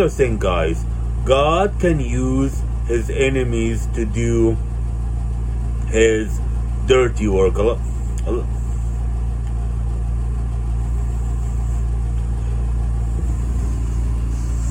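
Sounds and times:
speech: 0.0s - 4.7s, 5.9s - 8.6s
car engine rumbling while burning rubber: 0.0s - 14.6s.

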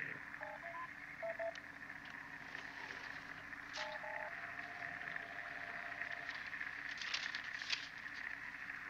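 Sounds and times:
crackling radio static interference from an aircraft's data transmitter: 0.0s - 8.8s
held electronic tone: 0.4s - 1.6s, 3.8s - 6.7s
short electronic beeps: 0.4s - 1.6s.

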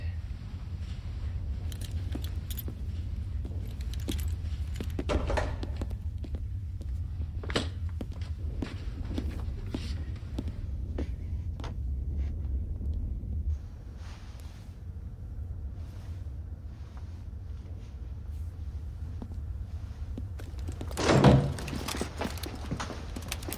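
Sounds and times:
steady low rumble: 0.0s - 23.5s
unlocked door opening with clicks and scraping: 3.7s - 6.0s, 20.4s - 23.5s.

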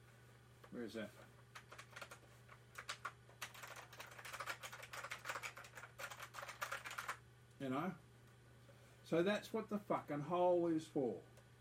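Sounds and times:
steady low electrical hum: 0.0s - 11.5s
speech: 0.7s - 1.4s, 7.6s - 8.1s, 9.1s - 11.3s
rapid typing on a mechanical keyboard: 1.5s - 7.2s.

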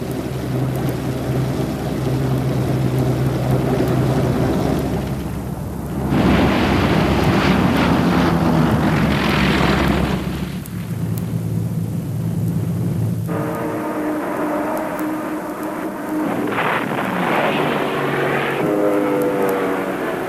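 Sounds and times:
Mitsubishi Zero propeller fighter and bomber planes droning overhead: 0.0s - 20.2s.

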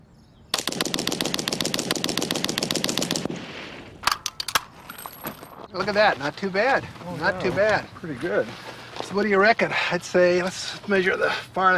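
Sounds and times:
sharp separate cracks of a Vickers machine gun: 0.5s - 3.3s
Vickers machine gun burst in a bullet-spread test: 0.6s - 3.3s
speech: 5.8s - 11.7s.

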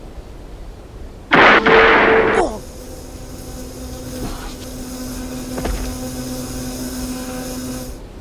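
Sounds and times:
gunshot special effect: 1.3s - 2.4s.

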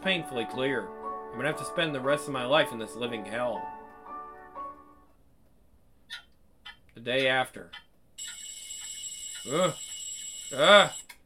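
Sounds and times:
speech: 0.0s - 3.8s, 7.0s - 8.4s, 9.4s - 9.9s, 10.5s - 11.0s
alarm clock ringing with high-pitched electronic tone: 8.2s - 11.1s
person groaning: 9.5s - 9.8s, 10.6s - 10.9s.

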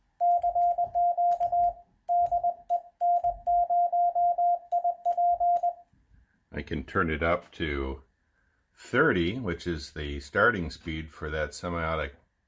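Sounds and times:
Morse code tone at 20 words per minute from an electronic keyer: 0.2s - 5.8s
speech: 6.6s - 8.1s, 8.8s - 12.2s.

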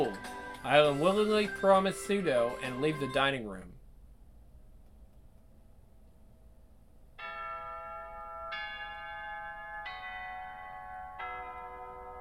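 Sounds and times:
speech: 0.0s - 3.7s
school bell chime marking the start of afternoon classes: 7.2s - 12.2s.

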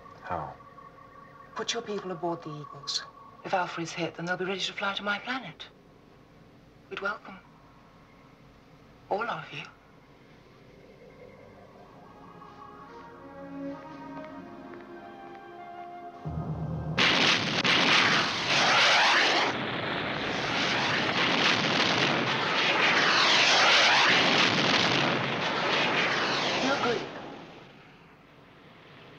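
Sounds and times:
speech: 0.3s - 0.6s, 1.6s - 5.8s, 6.9s - 7.5s, 9.1s - 9.8s
tonal sound: 10.8s - 17.7s
missile launching from a planet: 16.2s - 27.8s.

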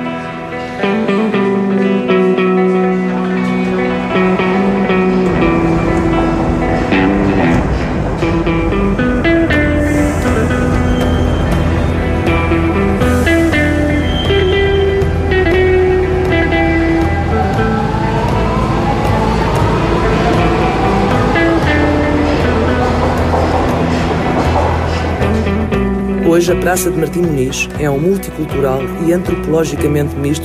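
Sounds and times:
metro train rumbling at Martim Moniz station in Lisbon, Portugal: 0.0s - 28.4s
faint amplified station voice warning to mind the doors: 0.0s - 30.4s
metro train motors whining: 4.2s - 26.1s
speech: 26.5s - 30.4s.

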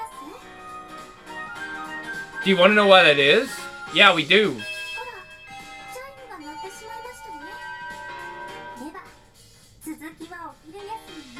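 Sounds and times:
speech: 2.4s - 4.7s
school bell chime ringing: 2.4s - 8.9s.

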